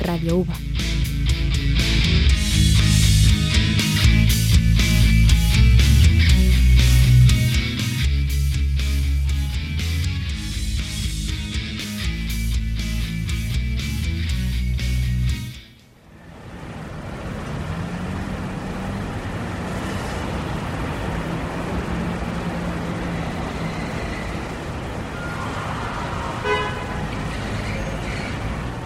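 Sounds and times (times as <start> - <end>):
roar of engines and road noise in city traffic: 0.0 - 28.8
speech: 0.2 - 0.8
car horns honking in city traffic: 24.1 - 28.7.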